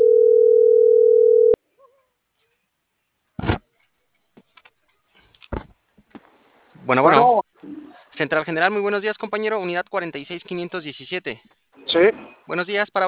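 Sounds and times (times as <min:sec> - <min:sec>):
telephone dial tone: 0:00.0 - 0:01.6
speech: 0:06.9 - 0:13.0.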